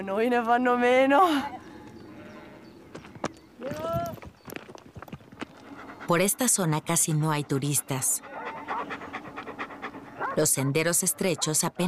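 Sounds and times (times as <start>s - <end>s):
speech: 0.0s - 1.6s, 6.1s - 8.3s, 10.4s - 11.8s
sheep hooves walking on a narrow rocky path: 1.8s - 8.0s.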